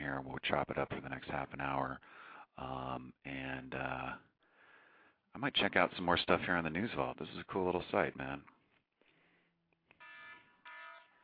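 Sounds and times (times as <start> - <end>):
speech: 0.1 - 4.3, 5.3 - 8.6
alarm clock blaring in buzzy electronic bursts: 10.0 - 11.2.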